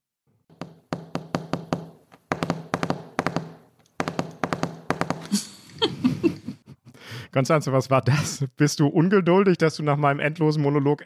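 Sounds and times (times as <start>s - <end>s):
fingertips drumming on a desk: 0.5s - 5.3s
laughter: 5.2s - 7.0s
speech: 7.4s - 11.0s.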